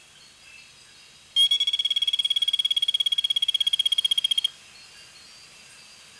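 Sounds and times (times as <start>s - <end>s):
Oreophryne equus frog: 1.4s - 4.5s.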